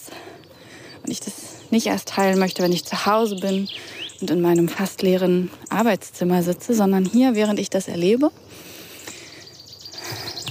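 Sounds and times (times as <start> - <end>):
birds chirping and singing in a park: 0.0 - 10.5
steady hum of open air: 0.0 - 10.5
speech: 1.1 - 8.4.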